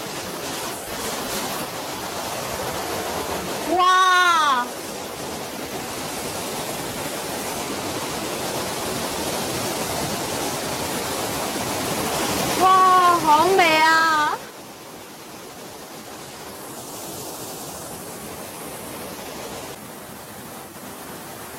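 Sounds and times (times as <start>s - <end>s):
waterfall rushing: 0.0s - 21.5s
person exclaiming: 3.7s - 4.7s.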